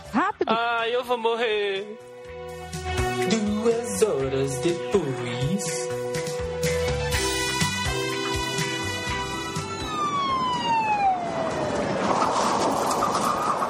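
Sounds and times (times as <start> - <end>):
speech: 0.2 - 2.1, 2.9 - 6.2
ambulance siren wailing: 7.1 - 13.6.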